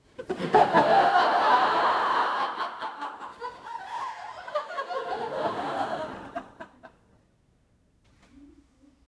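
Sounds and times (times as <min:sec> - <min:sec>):
theater audience laughing: 0:00.2 - 0:07.0.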